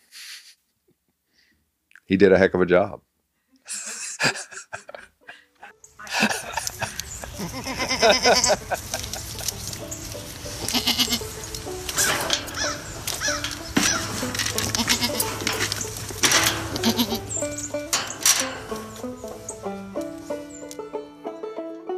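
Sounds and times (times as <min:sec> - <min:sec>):
speech: 0:02.1 - 0:03.1, 0:08.0 - 0:08.9
laughter: 0:03.6 - 0:09.8
sustained musical tones: 0:05.4 - 0:21.9
herd of goats bleating: 0:06.0 - 0:09.7, 0:10.4 - 0:19.1.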